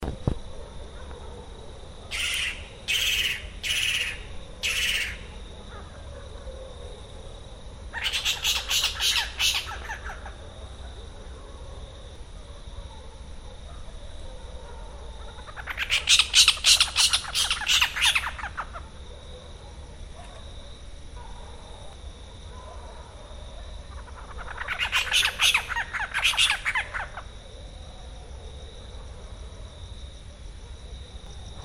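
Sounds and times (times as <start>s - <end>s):
Spotted Owlet Athene brama calling: 2.1s - 5.4s, 7.9s - 10.4s, 15.3s - 19.0s, 23.9s - 27.3s.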